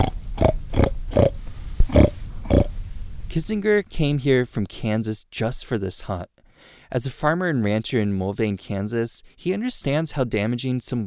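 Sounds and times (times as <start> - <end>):
man imitating pig oinks to lure hogs during a hog hunt in rainy woods: 0.0 - 2.7
speech: 3.4 - 11.0.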